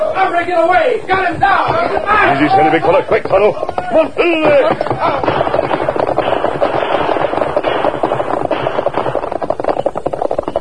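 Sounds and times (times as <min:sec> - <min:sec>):
speech: 0:00.3 - 0:05.9
rapid gunshots: 0:04.4 - 0:10.5.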